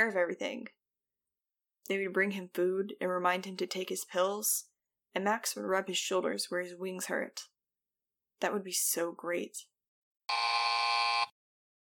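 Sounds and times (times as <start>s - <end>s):
speech: 0.0s - 0.8s, 1.8s - 7.5s, 8.4s - 9.7s
tiny electronic watch timer buzzer going off: 10.3s - 11.4s.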